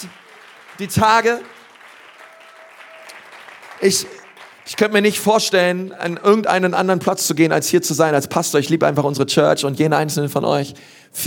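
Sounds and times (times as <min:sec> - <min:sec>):
audience applause: 0:00.0 - 0:05.2
speech: 0:00.8 - 0:01.5, 0:03.8 - 0:11.2.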